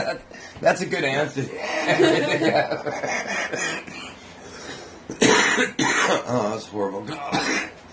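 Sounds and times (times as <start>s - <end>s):
speech: 0.0s - 4.0s, 5.2s - 7.8s
laughter: 1.6s - 3.9s
person with a cold coughing in harsh breathy bursts: 5.1s - 6.4s, 7.1s - 7.8s.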